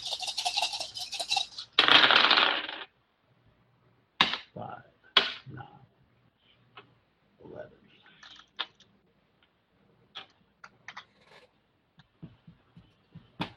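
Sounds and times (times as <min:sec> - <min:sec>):
many dice rattling and rolling during a tabletop role-playing game: 0:00.0 - 0:02.9.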